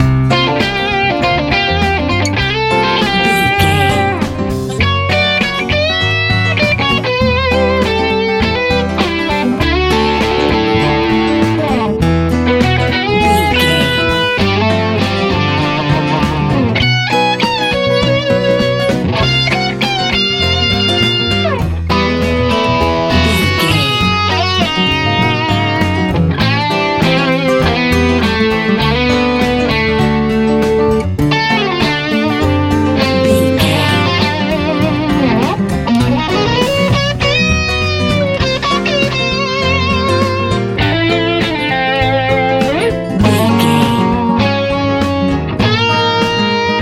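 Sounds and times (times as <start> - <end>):
bright easy rock pop music: 0.0 - 46.8.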